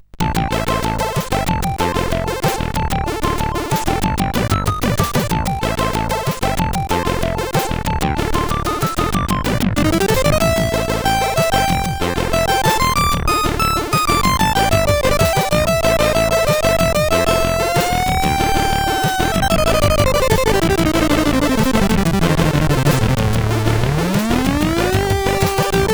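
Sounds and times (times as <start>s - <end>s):
chiptune tune on a CSG8580R5 SID chip: 0.2s - 25.9s.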